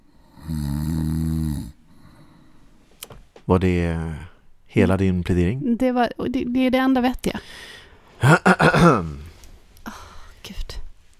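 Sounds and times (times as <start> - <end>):
hiss: 0.0 - 11.1
loud snore: 0.2 - 1.8
speech: 3.5 - 9.2.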